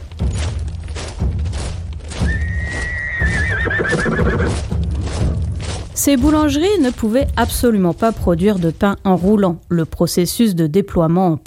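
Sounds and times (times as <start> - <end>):
horse hooves clip-clopping: 0.0 - 11.4
horse whinnying with a long wavering high cry: 2.2 - 4.6
speech: 6.0 - 11.4.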